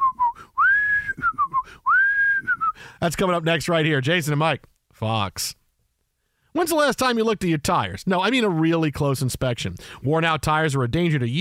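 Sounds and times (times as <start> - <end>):
person whistling a short tuneful phrase: 0.0 - 2.9
speech: 3.0 - 5.6, 6.6 - 11.3.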